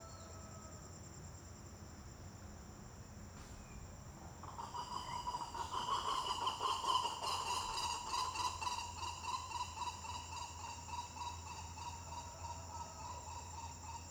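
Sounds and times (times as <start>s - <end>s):
bird singing while passing: 0.0s - 0.8s, 3.4s - 14.0s.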